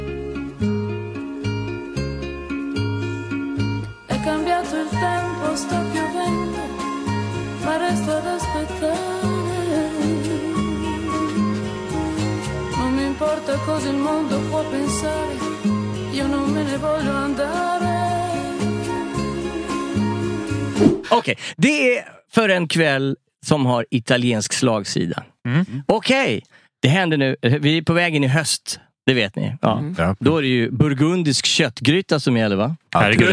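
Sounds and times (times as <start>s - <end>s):
Italian song from an album recording with rhythmic accompaniment: 0.0s - 21.2s
speech: 13.5s - 17.9s, 20.8s - 33.3s.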